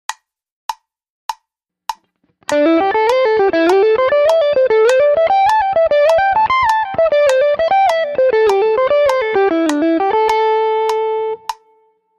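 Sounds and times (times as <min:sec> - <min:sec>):
two-string slide guitar pentatonic phrase: 0:02.5 - 0:11.5.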